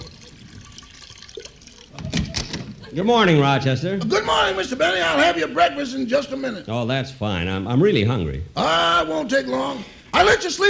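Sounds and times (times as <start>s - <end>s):
cognac being poured into a dish: 0.0s - 2.4s
speech: 2.9s - 10.6s.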